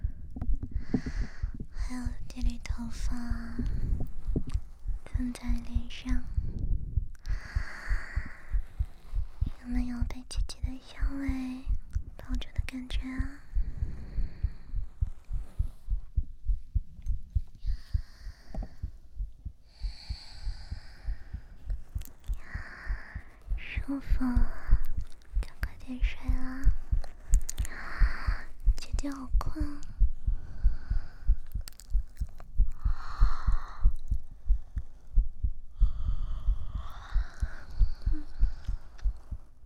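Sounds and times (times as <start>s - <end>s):
person whispering: 0.0s - 15.9s, 20.0s - 34.2s, 35.8s - 39.6s
heartbeat: 0.0s - 39.6s
breathy sounds: 0.6s - 2.0s, 6.2s - 9.6s, 13.4s - 16.1s, 17.6s - 19.0s, 19.6s - 23.6s, 26.6s - 28.6s, 29.9s - 39.6s
speech: 1.9s - 4.0s, 5.2s - 6.4s, 9.6s - 11.7s, 12.3s - 13.4s.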